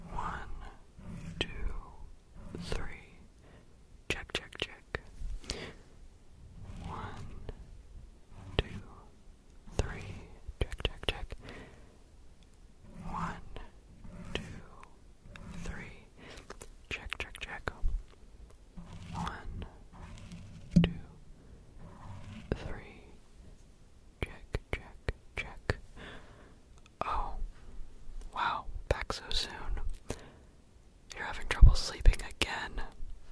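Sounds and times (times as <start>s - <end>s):
young man whispering in an ASMR sound-therapy recording: 0.0s - 3.4s, 4.1s - 5.8s, 6.5s - 11.7s, 12.8s - 18.1s, 18.8s - 21.2s, 21.8s - 23.2s, 24.2s - 25.9s, 27.0s - 27.5s, 28.3s - 30.1s, 31.1s - 33.0s
ASMR rustles: 0.0s - 3.7s, 4.9s - 16.9s, 17.6s - 23.8s.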